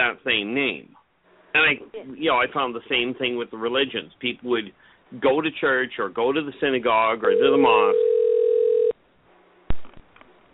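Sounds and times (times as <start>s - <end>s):
speech: 0.0s - 8.1s
telephone ringback tone: 7.2s - 9.0s
quiet telephone line hiss: 7.3s - 8.9s.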